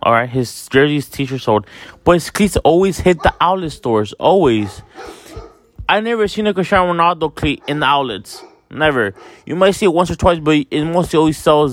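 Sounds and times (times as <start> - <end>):
speech: 0.0 - 11.7
dog barking at people in a window: 3.0 - 3.6, 4.5 - 5.7, 7.4 - 9.5.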